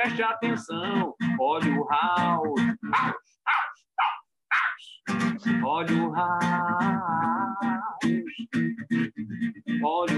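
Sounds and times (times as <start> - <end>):
speech: 0.0 - 3.2, 5.1 - 9.0
man barking like a dog: 2.8 - 5.0.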